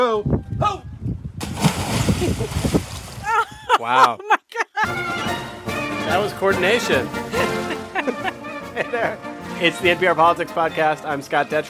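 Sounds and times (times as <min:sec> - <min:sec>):
speech: 0:00.0 - 0:00.8, 0:02.2 - 0:02.8, 0:03.8 - 0:04.4, 0:06.3 - 0:07.5, 0:08.9 - 0:11.6
water splashing and sloshing: 0:01.4 - 0:03.6
laughter: 0:03.2 - 0:05.1, 0:07.3 - 0:09.2.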